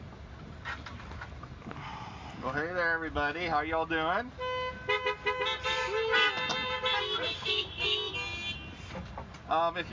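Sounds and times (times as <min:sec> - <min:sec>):
speech: 0:02.4 - 0:04.5, 0:09.5 - 0:09.9
many car horns honking: 0:04.3 - 0:09.2.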